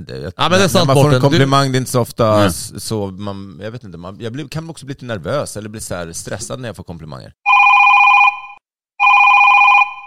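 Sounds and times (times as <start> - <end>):
speech: 0.0 - 7.6
telephone ringing in electronic trills: 7.5 - 10.0.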